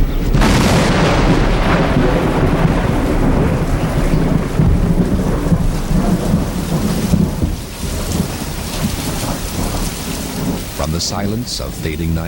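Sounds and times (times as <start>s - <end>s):
gusting wind: 0.0s - 12.0s
deep thunder rumbling: 0.0s - 12.2s
heavy rain: 0.0s - 12.2s
speech: 11.0s - 12.2s.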